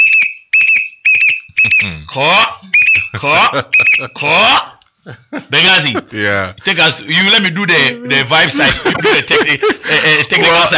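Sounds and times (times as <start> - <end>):
short sharp shrill whistle blasts: 0.0 - 2.0, 2.7 - 4.1
speech: 2.1 - 10.7
laughter: 2.7 - 6.3, 7.8 - 10.7.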